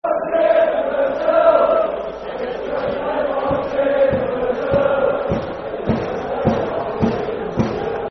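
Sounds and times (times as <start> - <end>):
football chant: 0.0 - 8.0.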